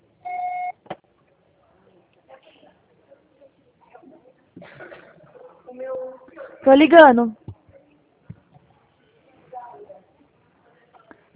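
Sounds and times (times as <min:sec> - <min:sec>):
steady electronic beep from a phone call reaching voicemail: 0:00.2 - 0:00.8
speech: 0:06.7 - 0:07.4.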